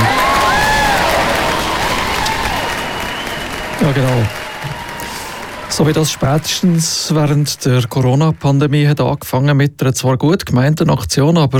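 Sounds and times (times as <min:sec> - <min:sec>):
cheers: 0:00.0 - 0:08.9
crowd applauding: 0:00.0 - 0:09.6
whistles: 0:00.1 - 0:06.5
speech: 0:03.8 - 0:04.4, 0:05.8 - 0:11.5.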